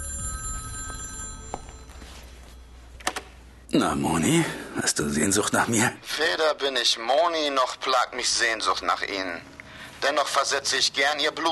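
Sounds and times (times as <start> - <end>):
telephone ringing with a steady electronic trill: 0.0 - 2.9
low hum: 0.0 - 11.4
speech: 3.7 - 11.4.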